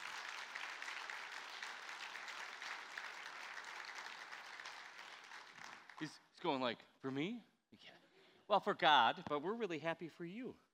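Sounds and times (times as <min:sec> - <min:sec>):
audience applauding: 0:00.0 - 0:06.2
speech: 0:06.0 - 0:10.6.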